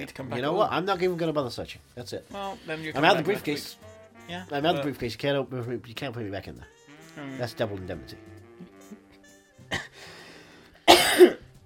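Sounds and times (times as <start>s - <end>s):
speech: 0.0s - 8.3s
throat clearing: 9.7s - 10.0s, 10.8s - 11.5s.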